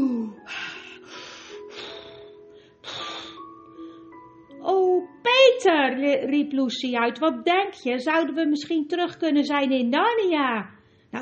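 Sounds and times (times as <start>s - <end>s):
breathy gasps: 0.1s - 4.2s
speech: 5.6s - 11.1s.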